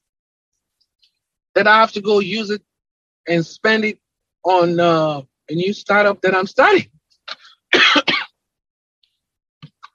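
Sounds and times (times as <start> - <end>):
speech: 1.6 - 7.9
short soft throat clearing: 7.3 - 8.3
loud harsh dry coughs: 7.3 - 8.4.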